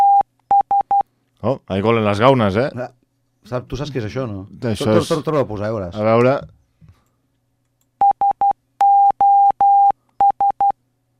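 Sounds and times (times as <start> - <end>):
Morse code SOS distress signal beeps: 0.0 - 1.0, 8.0 - 10.7
speech: 1.4 - 6.6.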